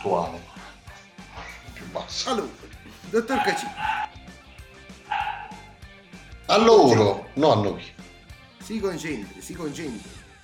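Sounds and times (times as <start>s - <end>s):
speech: 0.0s - 0.6s, 1.8s - 4.2s, 6.5s - 8.0s, 8.7s - 10.2s
dog barking in sharp yelping bursts: 3.3s - 4.1s, 5.0s - 5.8s.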